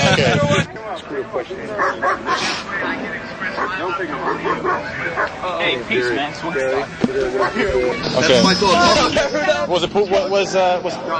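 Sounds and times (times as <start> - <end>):
speech: 0.5 - 11.1
angry dog barking aggressively: 1.8 - 2.6, 3.6 - 5.3.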